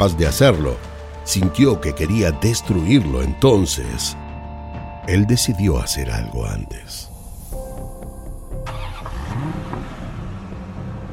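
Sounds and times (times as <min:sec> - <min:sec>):
speech: 0:00.0 - 0:04.2, 0:05.0 - 0:07.1
car engine cranking, revving and idling: 0:08.0 - 0:11.1.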